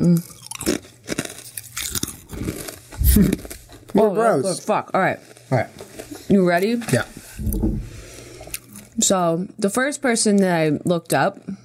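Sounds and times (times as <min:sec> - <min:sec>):
biting and crunching into a Mesa crisp: 0:00.0 - 0:06.3
speech: 0:03.2 - 0:07.2, 0:09.1 - 0:11.6.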